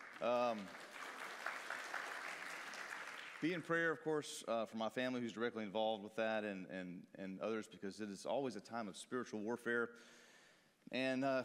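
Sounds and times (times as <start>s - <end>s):
audience clapping at a church service: 0.0s - 3.9s
speech: 0.2s - 0.9s, 3.4s - 10.3s, 10.9s - 11.4s.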